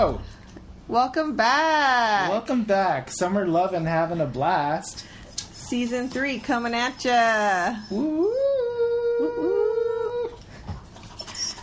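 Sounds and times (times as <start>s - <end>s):
speech: 0.0s - 8.6s
dog whining: 5.4s - 11.6s.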